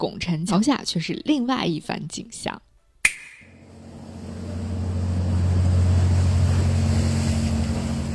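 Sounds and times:
speech: 0:00.0 - 0:02.7
cargo boat engine droning: 0:03.5 - 0:08.1
canal water slapping embankment: 0:03.6 - 0:08.1.

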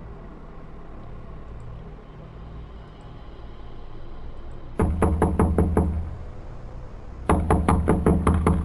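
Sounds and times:
firm knocks on a wooden door: 0:04.8 - 0:06.0, 0:07.3 - 0:08.6.

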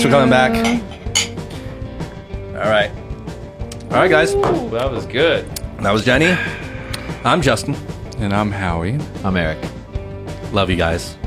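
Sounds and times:
speech: 0:00.0 - 0:01.3, 0:02.6 - 0:03.0, 0:03.9 - 0:06.6, 0:07.2 - 0:09.7, 0:10.5 - 0:11.2
glasses clinking together in a toast: 0:00.0 - 0:01.4.

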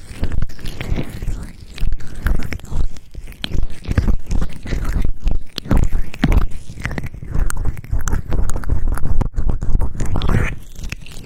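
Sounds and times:
vigorous ear rubbing against the microphone: 0:00.0 - 0:11.2.

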